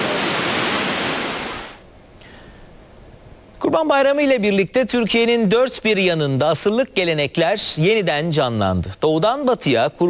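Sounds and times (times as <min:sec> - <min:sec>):
large waterfall roaring: 0:00.0 - 0:01.8
speech: 0:03.8 - 0:10.0.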